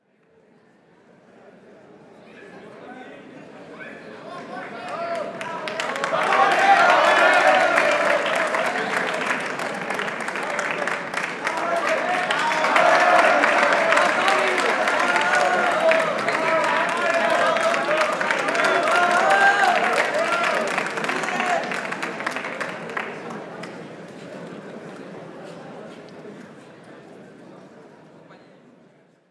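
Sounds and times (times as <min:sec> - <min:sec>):
applause: 0:04.8 - 0:23.9.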